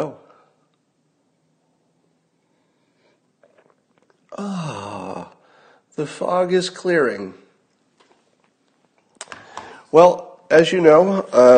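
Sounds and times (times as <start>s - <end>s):
low hiss: 0.0s - 11.5s
soft slurping from a mug: 2.2s - 4.4s
sipping coffee from a mug: 2.9s - 5.4s
speech: 4.4s - 5.0s, 6.0s - 7.4s, 9.9s - 11.5s.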